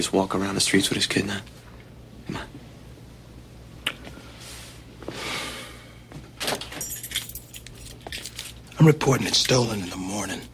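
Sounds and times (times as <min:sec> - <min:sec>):
speech: 0:00.0 - 0:01.7, 0:08.8 - 0:10.5
car keys jangling: 0:06.6 - 0:08.7.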